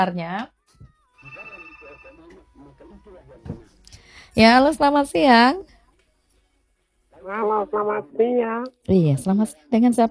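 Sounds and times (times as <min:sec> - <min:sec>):
speech: 0:00.0 - 0:00.6, 0:04.3 - 0:05.8, 0:07.2 - 0:10.1
telephone ringing for an incoming caller: 0:01.0 - 0:03.4.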